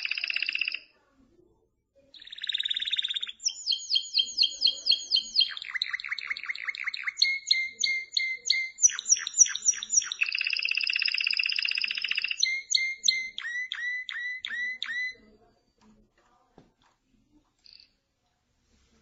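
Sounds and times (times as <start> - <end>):
canary singing: 0.0 - 0.9, 2.1 - 15.5.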